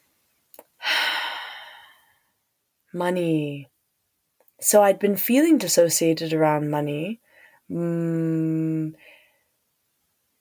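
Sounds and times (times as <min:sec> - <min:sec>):
deep breath: 0:00.8 - 0:02.3, 0:07.2 - 0:07.6
speech: 0:02.9 - 0:03.7, 0:04.6 - 0:09.2.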